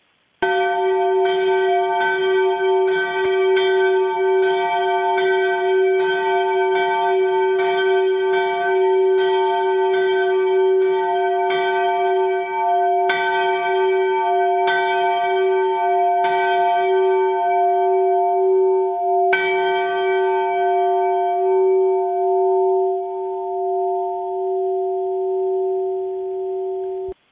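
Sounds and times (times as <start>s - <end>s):
large Benedictine abbey church bell tolling in Farnborough: 0.4s - 27.2s.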